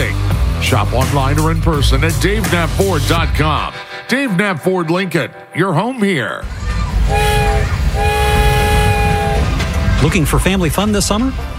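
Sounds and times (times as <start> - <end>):
speech: 0.7 - 8.2, 10.0 - 11.5
rumble of passing railroad cars: 6.4 - 11.5
train horn blasts: 7.0 - 9.8.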